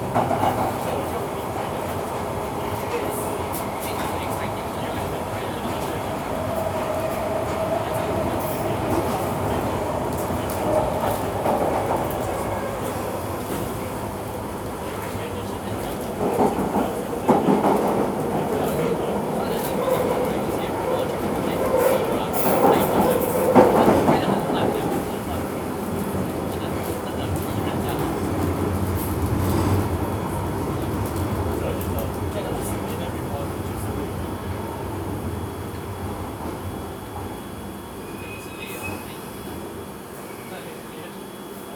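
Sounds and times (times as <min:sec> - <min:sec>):
Underground train rolling along rails heard from inside the carriage: 0:00.0 - 0:40.9.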